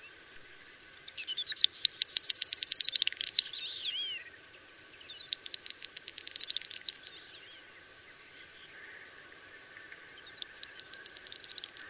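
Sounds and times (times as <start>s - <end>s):
Common snipe giving ticking notes: 1.2s - 4.3s, 5.1s - 7.6s, 9.7s - 11.8s.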